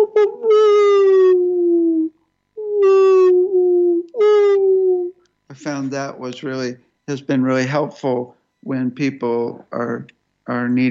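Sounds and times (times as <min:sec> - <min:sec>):
human voice imitating a wolf howl: 0:00.0 - 0:05.2
speech: 0:05.6 - 0:10.9.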